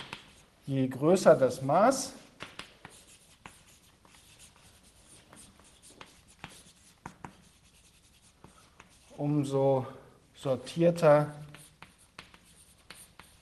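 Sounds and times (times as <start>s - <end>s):
chalk or marker writing on a board during a lecture: 0.0s - 0.5s, 2.4s - 9.2s, 11.4s - 13.4s
speech: 0.7s - 2.2s, 9.3s - 11.5s.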